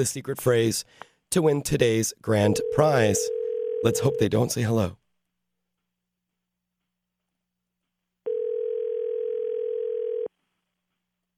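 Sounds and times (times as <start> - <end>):
speech: 0.0 - 5.0
telephone dial tone while a number is dialed: 2.6 - 4.3, 8.3 - 10.3.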